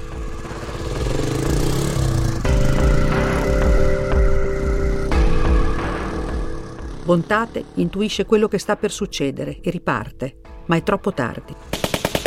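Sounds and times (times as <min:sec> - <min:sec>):
motorcycle engine rumbling: 0:00.0 - 0:08.4
speech: 0:07.1 - 0:11.8.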